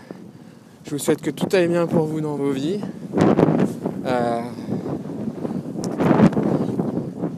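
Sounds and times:
strong wind buffeting the microphone while cycling: 0:00.0 - 0:07.3
speech: 0:00.9 - 0:04.6.

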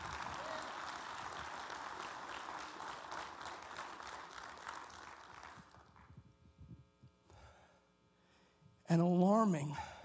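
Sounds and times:
crowd applauding in a large room: 0:00.0 - 0:06.2
scattered claps: 0:00.0 - 0:06.2
speech: 0:08.9 - 0:09.9.

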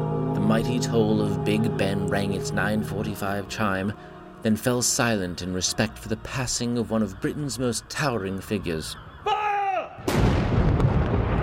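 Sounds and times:
speech: 0:00.5 - 0:09.1
ceremonial cannon firing a salute at a state funeral: 0:10.0 - 0:11.4.

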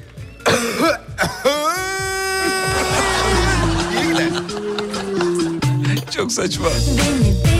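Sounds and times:
loud drawn-out cough with a rough voiced rasp: 0:00.4 - 0:01.8
speech: 0:00.8 - 0:01.1, 0:06.2 - 0:07.5
laughter: 0:01.4 - 0:06.1.

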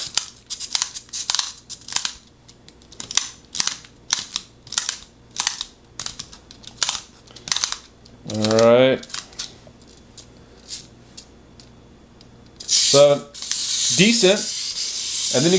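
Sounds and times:
speech: 0:08.3 - 0:09.1, 0:13.0 - 0:13.3, 0:14.0 - 0:14.5, 0:15.3 - 0:15.5
pencil being sharpened in a manual sharpener: 0:12.6 - 0:15.5.

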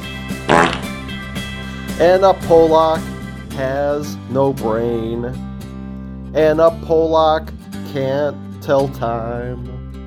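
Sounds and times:
short loud raspy fart: 0:00.5 - 0:01.0
speech: 0:02.0 - 0:05.5, 0:06.3 - 0:09.8.

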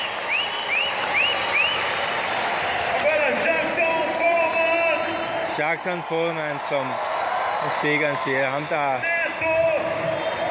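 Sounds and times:
crowd cheering: 0:00.0 - 0:10.4
large audience applauding: 0:00.0 - 0:10.4
speech: 0:05.6 - 0:10.2.

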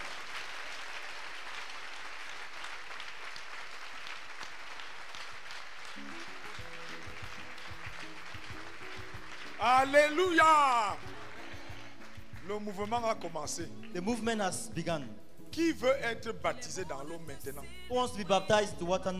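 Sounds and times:
congregation clapping at a church youth service: 0:00.0 - 0:14.9
speech: 0:09.6 - 0:11.0, 0:12.5 - 0:19.1.

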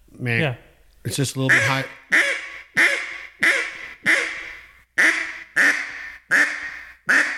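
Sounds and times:
speech: 0:00.2 - 0:02.2
duck call blowing coarse raspy hen quacks: 0:01.5 - 0:07.3.

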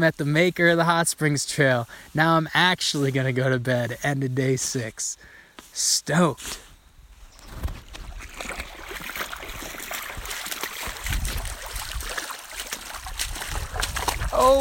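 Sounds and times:
speech: 0:00.0 - 0:06.7, 0:14.4 - 0:14.5
person wading through a shallow creek on a trail: 0:07.4 - 0:14.5.

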